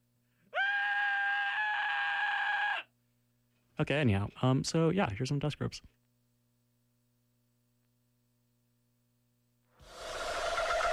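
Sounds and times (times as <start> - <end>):
single sustained scream from one person: 0.5 - 2.9
speech: 3.8 - 6.0.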